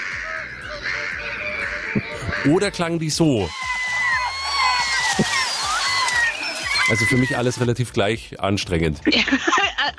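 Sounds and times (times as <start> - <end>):
gulls calling: 0.0 - 7.7
speech: 2.0 - 3.6, 6.9 - 9.9
laughter: 9.0 - 9.9.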